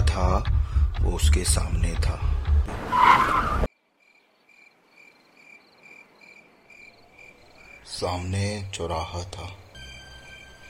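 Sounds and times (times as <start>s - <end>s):
speech: 0.2s - 3.6s, 8.0s - 9.6s
car skidding with harsh tire screech: 2.7s - 3.7s
faint crickets chirping in night air: 3.7s - 10.6s.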